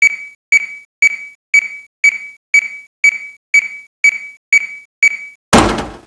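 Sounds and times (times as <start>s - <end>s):
looping beeps: 0.0s - 5.4s.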